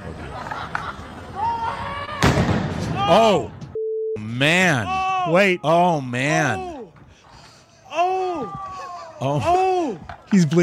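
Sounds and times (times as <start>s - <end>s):
laughter: 0.0s - 2.0s, 8.6s - 9.9s
loud sharp bang of a celebratory firework: 2.2s - 3.0s
murmur of people chatting outdoors in the street: 3.0s - 3.5s, 4.2s - 6.9s, 7.9s - 10.6s
speech: 3.1s - 3.6s, 4.2s - 6.7s, 9.2s - 10.6s.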